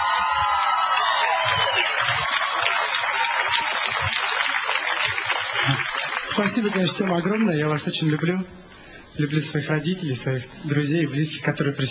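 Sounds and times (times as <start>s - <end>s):
studio audience cheers and whoops: 0.0s - 4.4s
studio audience applause: 0.0s - 8.3s
speech: 6.4s - 8.6s, 9.2s - 11.8s.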